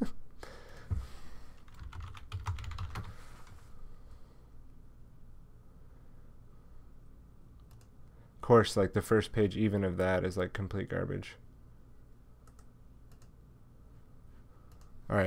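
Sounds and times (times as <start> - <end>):
rapid typing on a computer keyboard: 1.6 - 3.2, 7.6 - 7.9
speech: 8.5 - 11.4.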